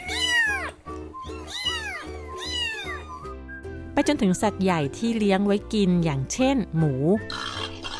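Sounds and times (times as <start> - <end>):
cat meowing: 0.0 - 3.3
speech: 4.0 - 7.5.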